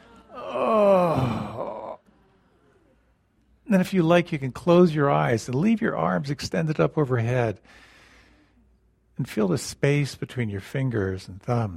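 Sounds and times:
person yawning during a stretching exercise: 0.3s - 2.0s
speech: 3.7s - 7.9s, 9.2s - 11.7s.

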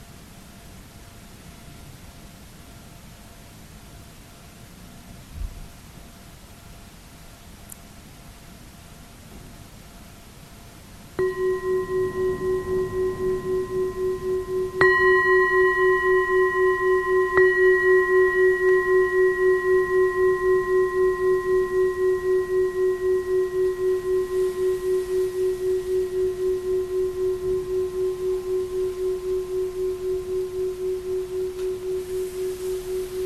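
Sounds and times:
meditation bell ringing: 11.2s - 33.2s.

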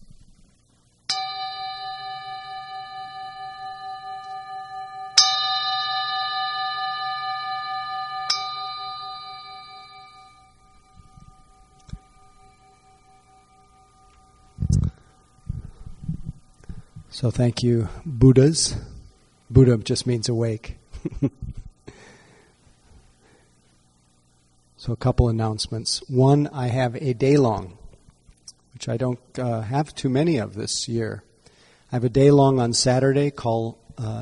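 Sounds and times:
meditation gong struck and ringing: 1.1s - 15.9s
speech: 17.2s - 18.9s, 19.6s - 21.4s, 24.9s - 27.8s, 28.8s - 31.3s, 31.9s - 34.2s.

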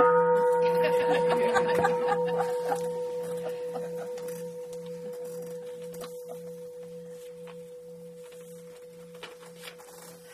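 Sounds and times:
bell being struck and ringing: 0.0s - 9.9s
group of people murmuring and chuckling softly: 0.7s - 4.4s.

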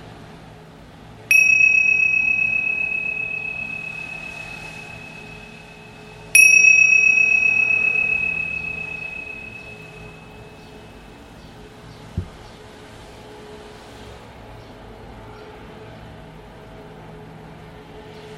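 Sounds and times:
meditation bell struck at the end of a meditation: 1.3s - 10.6s.

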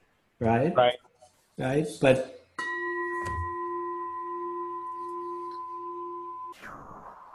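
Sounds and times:
speech: 0.4s - 2.4s
bell ringing with sustained overlapping tones: 2.6s - 6.5s.

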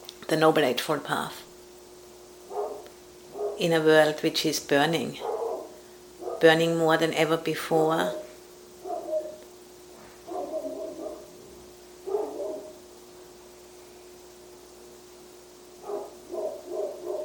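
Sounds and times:
hiss: 0.0s - 17.2s
speech: 0.3s - 1.4s, 3.6s - 5.3s, 6.4s - 8.2s
dog barking: 2.5s - 3.6s, 5.2s - 6.5s, 8.8s - 9.4s, 10.2s - 11.4s, 12.0s - 12.8s, 15.8s - 17.2s.

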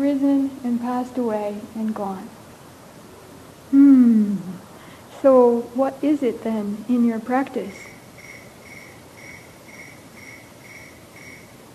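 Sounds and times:
soft hiss: 0.0s - 11.7s
speech: 0.1s - 2.4s, 3.7s - 7.9s
cricket chirping: 7.8s - 11.7s.

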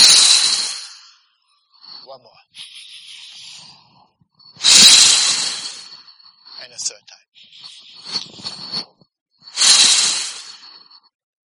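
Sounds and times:
sharp forceful exhalations during a staccato breathing exercise: 0.0s - 1.1s, 4.6s - 6.0s, 9.6s - 10.6s
speech: 2.1s - 2.7s, 6.8s - 7.2s.

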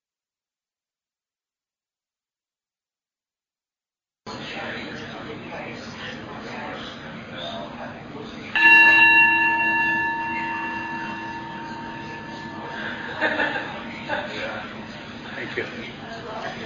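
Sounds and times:
soft murmurs from people: 4.4s - 16.6s
bell struck as a signal to switch roles: 8.6s - 15.0s
light laughter from people: 12.6s - 15.4s.

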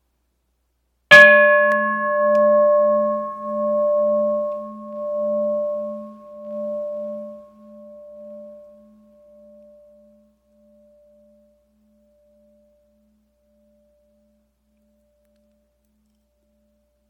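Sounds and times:
meditation bell ringing: 1.1s - 14.5s.

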